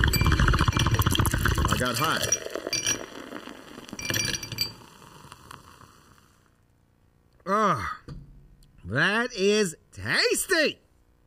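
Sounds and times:
glasses clinking together in a toast: 0.0 - 3.4, 4.0 - 4.9
speech: 1.8 - 2.4, 8.9 - 10.8.

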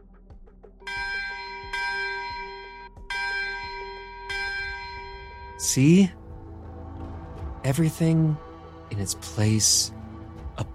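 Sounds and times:
church bell tolling to mark 6 p.m.: 0.9 - 6.2
speech: 5.6 - 6.2, 7.6 - 10.0.

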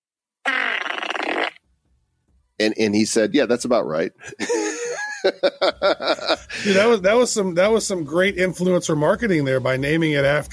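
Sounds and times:
buzzing fart sound effect from a phone app: 0.4 - 1.7
speech: 2.6 - 10.5
laughter: 4.2 - 7.0.

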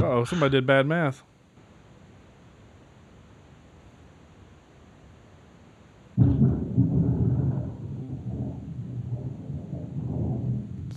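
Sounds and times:
speech: 0.2 - 1.3
thunder crack during a storm at a house: 6.2 - 10.9.

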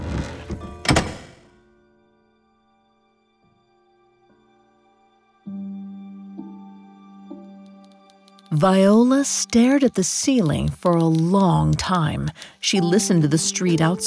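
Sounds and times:
door closing: 0.0 - 1.5
speech: 8.5 - 14.0.

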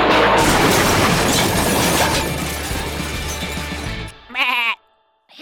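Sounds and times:
crash of splintering wood through a barn roof: 0.1 - 4.0
startled animal bleat: 4.2 - 4.9.

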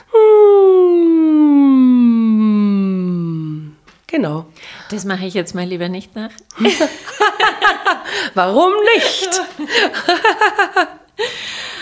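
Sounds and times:
voice humming a siren-like downward glide as a vocal warm-up exercise: 0.0 - 3.8
speech: 4.2 - 11.6
laughter: 6.6 - 11.0.

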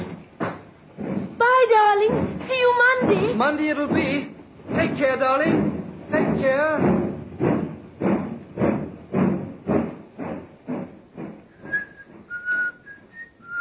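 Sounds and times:
train chugging as it pulls out of a station: 0.0 - 13.6
speech: 1.7 - 7.0
high whistle-like squeal of a train: 11.5 - 13.6.

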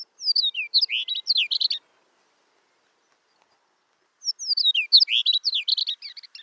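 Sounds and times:
chestnut-collared longspur song: 0.0 - 1.8, 4.2 - 6.4.

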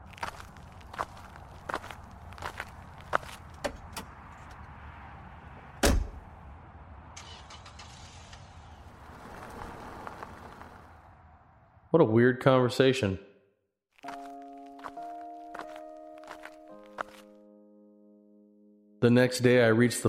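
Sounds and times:
man's footsteps walking back to his car: 0.0 - 4.6, 14.0 - 17.3
constant low outdoor rumble: 0.0 - 12.0
speech: 12.0 - 13.3, 19.0 - 20.0.

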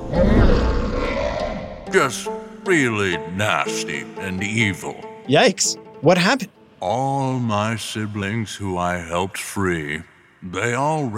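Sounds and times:
deep roar of a giant snake-like winged monster: 0.0 - 1.9
speech: 1.9 - 11.1.

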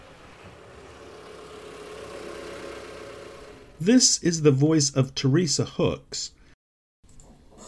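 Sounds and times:
car engine rumbling coming up a driveway: 0.0 - 4.5
speech: 3.8 - 6.4.

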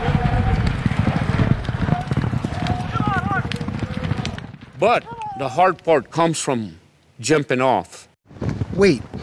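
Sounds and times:
crowd noise with indistinct voices: 0.0 - 4.4
horses galloping in an Indian Relay race on a half-mile track: 0.0 - 6.2
speech: 4.8 - 8.0, 8.8 - 9.1.

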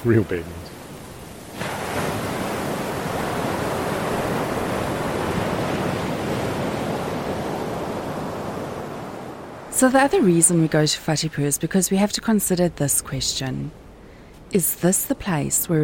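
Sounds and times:
speech: 0.0 - 0.6, 9.8 - 13.8, 14.5 - 15.8
ocean waves breaking on rocks: 0.0 - 10.9.

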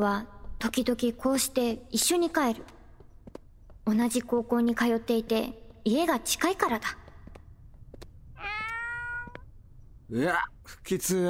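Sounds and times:
speech: 0.0 - 2.8, 3.9 - 7.0, 10.1 - 11.2
black cat meowing: 8.4 - 9.5.

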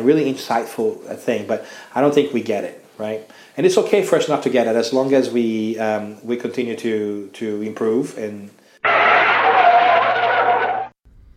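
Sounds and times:
speech: 0.0 - 9.0
car brakes screeching sound effect: 8.8 - 10.9.

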